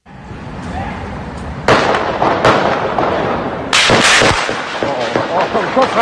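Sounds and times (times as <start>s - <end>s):
steady noise: 0.0s - 6.0s
gunshots from long guns echoing off buildings: 1.6s - 6.0s.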